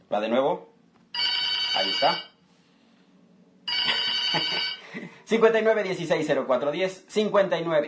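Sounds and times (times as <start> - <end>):
speech: 0.1 - 0.7, 1.8 - 2.3, 4.3 - 7.8
telephone bell on the phone line of a radio booth ringing: 1.2 - 2.4, 3.7 - 4.9.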